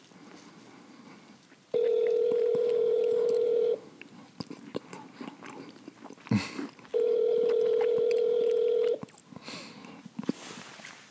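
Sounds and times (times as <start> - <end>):
phone line ringback tones: 1.8 - 3.8, 7.0 - 9.0.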